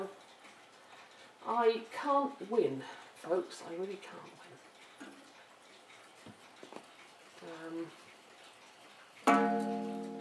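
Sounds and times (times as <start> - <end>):
speech: 1.5 - 4.7, 7.4 - 8.0
large mantel clock striking with an unusual ringing chime: 9.2 - 10.1.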